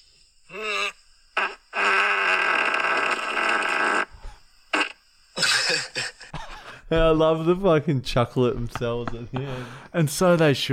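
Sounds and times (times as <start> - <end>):
loud long raspy fart: 0.5 - 5.8
speech: 6.9 - 10.7.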